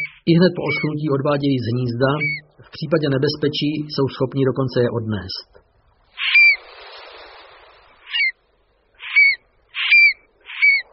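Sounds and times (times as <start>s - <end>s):
stone-curlew calling: 0.0s - 1.2s, 1.8s - 2.7s, 6.2s - 6.6s, 8.0s - 8.4s, 9.0s - 10.9s
speech: 0.3s - 5.6s.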